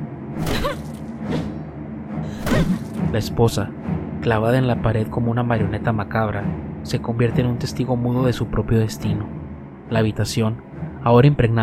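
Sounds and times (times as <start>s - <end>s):
low steady droning background: 0.0s - 11.6s
metal axes swung in an attack slicing through the air: 0.4s - 3.2s
speech: 3.1s - 11.6s.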